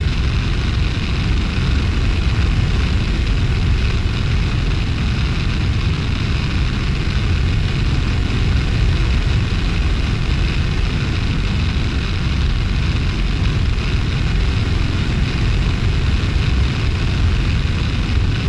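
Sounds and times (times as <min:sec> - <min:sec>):
platform thruster burner: 0:00.0 - 0:18.4.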